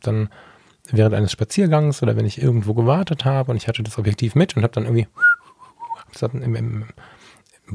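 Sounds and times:
speech: 0.0s - 5.3s, 6.1s - 7.7s
person whistling an imitation of a birdcall: 5.2s - 6.0s.

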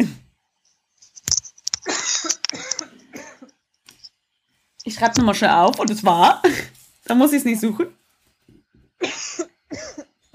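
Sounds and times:
person coughing with rough throaty coughs: 1.8s - 3.5s, 9.0s - 10.2s
speech: 4.9s - 8.0s.

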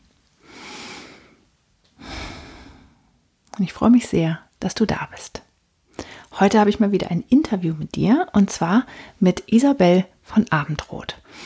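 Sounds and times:
person taking a deep breath: 0.4s - 1.4s, 2.0s - 3.2s
speech: 3.6s - 5.4s, 6.4s - 11.4s.

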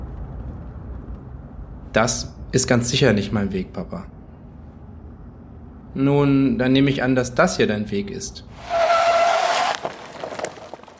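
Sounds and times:
speech: 2.0s - 4.2s, 6.0s - 9.0s
car tires squealing under hard braking: 8.5s - 10.9s.

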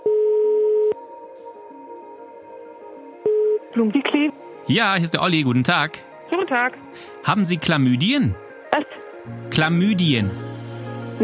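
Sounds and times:
steady telephone line tone as a call is placed: 0.0s - 1.0s, 3.2s - 4.0s
speech: 3.8s - 8.4s, 9.2s - 10.4s.

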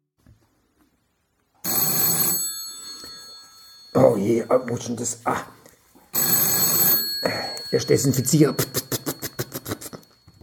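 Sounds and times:
telephone bell ringing: 1.6s - 4.5s, 6.1s - 10.4s
speech: 3.9s - 5.6s, 7.7s - 8.8s.

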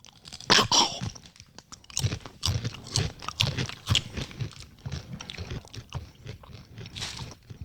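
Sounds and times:
chewing crunchy spiced Mexican snack like tortilla chips: 0.0s - 7.6s.

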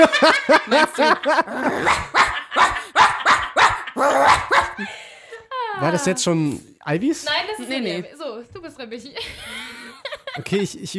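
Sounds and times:
speech: 0.0s - 2.8s, 5.9s - 8.2s, 8.8s - 10.9s
laughter: 0.0s - 6.1s, 9.2s - 10.7s
person imitating dog barking: 1.4s - 4.8s.

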